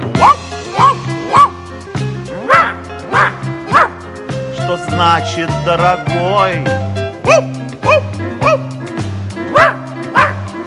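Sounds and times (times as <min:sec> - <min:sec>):
dogs barking loudly: 0:00.0 - 0:01.6, 0:02.4 - 0:04.1, 0:07.2 - 0:10.6
speech: 0:05.1 - 0:08.0.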